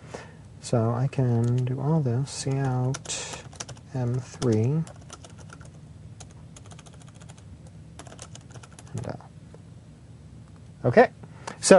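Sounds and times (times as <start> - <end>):
speech: 0.7 - 5.0, 10.8 - 11.7
typing code on a computer keyboard: 2.5 - 7.4, 8.0 - 9.0.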